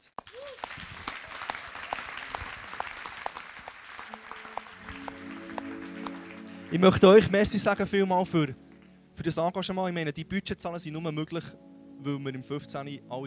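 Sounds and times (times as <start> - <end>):
roomful of people clapping: 0.0 - 7.9, 8.6 - 9.0
speech: 6.7 - 8.6, 9.2 - 13.2.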